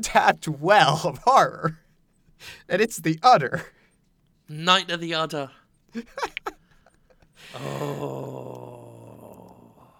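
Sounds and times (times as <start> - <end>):
speech: 0.0 - 1.8, 2.4 - 3.8, 4.5 - 6.4, 7.4 - 8.6
person growling: 7.5 - 9.9.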